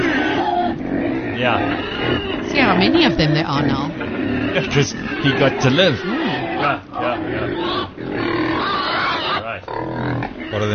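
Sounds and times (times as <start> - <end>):
pigs grunting and snorting: 0.0 - 10.7
speech: 1.4 - 8.4.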